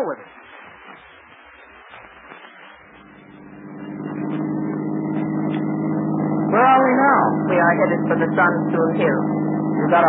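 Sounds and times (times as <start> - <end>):
speech: 0.0 - 0.4, 7.5 - 10.0
car engine running and driving away: 2.8 - 10.0.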